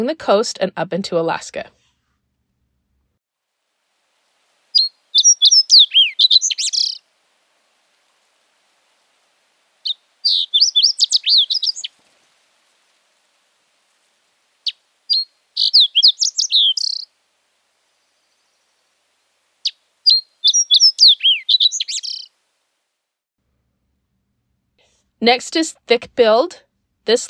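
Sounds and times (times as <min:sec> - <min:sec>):
speech: 0:00.0 - 0:01.8, 0:25.2 - 0:27.2
sooty fox sparrow singing: 0:04.7 - 0:22.4.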